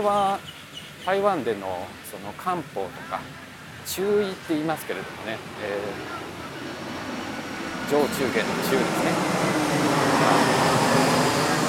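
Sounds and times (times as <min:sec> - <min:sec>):
speech: 0:00.0 - 0:06.3, 0:07.9 - 0:10.7
airplane roar passing low overhead: 0:00.0 - 0:11.6.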